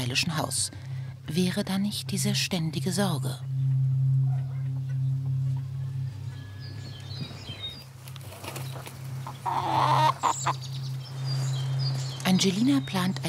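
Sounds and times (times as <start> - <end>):
speech: 0.0 - 3.5, 12.4 - 13.2
steady low hum: 0.0 - 13.2
flock of Padovana chickens clucking and chattering in a modern coop: 8.1 - 10.9.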